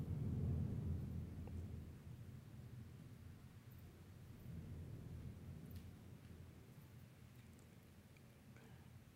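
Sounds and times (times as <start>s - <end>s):
thunder rumbling: 0.0s - 7.3s.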